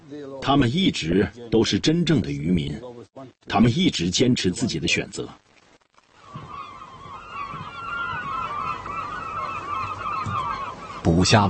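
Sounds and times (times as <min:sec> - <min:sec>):
speech: 0:00.1 - 0:05.4, 0:11.2 - 0:11.4
large flock of seagulls calling around a fishing boat: 0:06.1 - 0:11.4.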